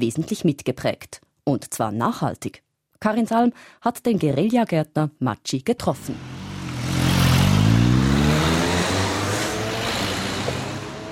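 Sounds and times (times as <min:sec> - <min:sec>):
speech: 0:00.0 - 0:06.4
broadband road noise: 0:06.0 - 0:11.1
car engine revving and accelerating in street traffic: 0:06.0 - 0:11.1
steady rumble of passing vehicles: 0:06.0 - 0:11.1.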